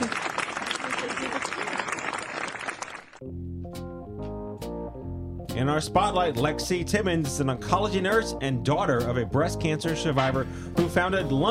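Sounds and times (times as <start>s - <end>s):
dense studio applause: 0.0s - 3.2s
speech: 5.6s - 11.4s.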